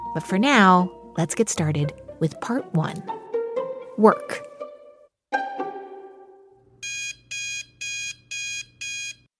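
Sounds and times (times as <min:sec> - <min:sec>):
speech: 0:00.1 - 0:03.2, 0:04.0 - 0:04.5
alarm clock ringing in bright electronic bursts: 0:06.9 - 0:09.2.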